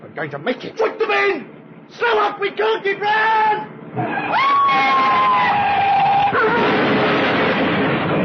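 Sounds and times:
speech: 0.2s - 5.7s
heavy rumbling: 3.6s - 8.2s
police siren wailing: 4.0s - 6.5s
car crash: 4.7s - 8.2s.

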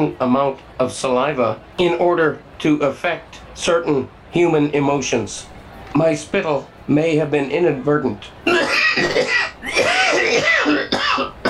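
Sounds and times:
speech: 0.0s - 9.5s
person coughing harshly: 8.5s - 11.4s.

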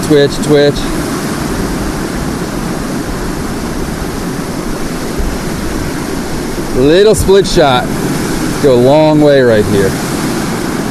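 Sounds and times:
rushing waterfall: 0.0s - 10.8s
speech: 0.1s - 1.0s, 6.8s - 8.0s, 8.6s - 10.1s.

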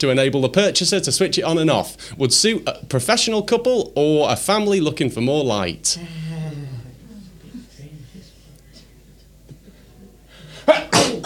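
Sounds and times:
speech: 0.0s - 6.2s
loud sneeze: 10.6s - 11.2s.

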